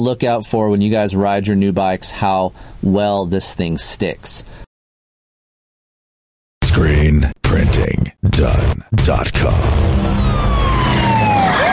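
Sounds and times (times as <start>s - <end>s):
speech: 0.0s - 4.6s, 6.8s - 10.4s
police siren wailing: 9.8s - 11.7s.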